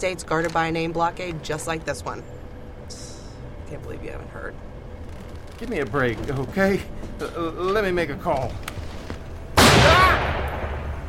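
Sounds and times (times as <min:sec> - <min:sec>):
speech: 0:00.0 - 0:03.0, 0:03.7 - 0:04.7, 0:05.6 - 0:08.7
gunshot fired as a warning shot at a guarded roadblock: 0:09.6 - 0:11.0.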